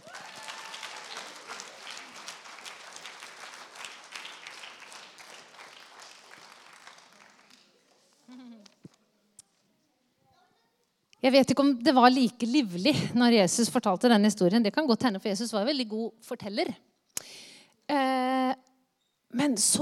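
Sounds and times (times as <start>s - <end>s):
audience applause: 0.0s - 7.9s
speech: 11.2s - 16.8s, 19.4s - 19.8s.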